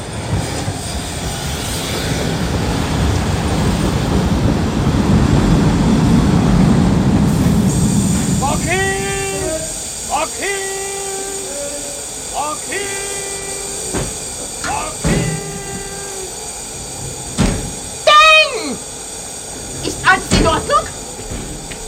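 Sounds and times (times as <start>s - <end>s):
train arriving with a broad steady rumble and roar: 0.0s - 21.8s
high sliding squeal-like tones: 7.7s - 21.8s.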